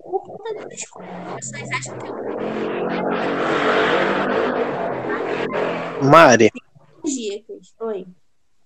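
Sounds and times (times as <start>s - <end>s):
speech: 0.5s - 8.2s
loud motorcycle engine roaring while passing by outside: 0.6s - 6.5s.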